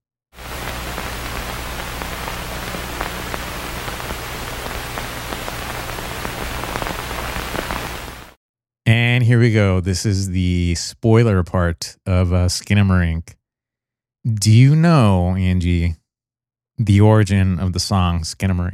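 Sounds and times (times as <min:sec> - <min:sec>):
steady even hiss: 0:00.4 - 0:08.4
speech: 0:08.9 - 0:13.4, 0:14.2 - 0:16.0, 0:16.8 - 0:18.7.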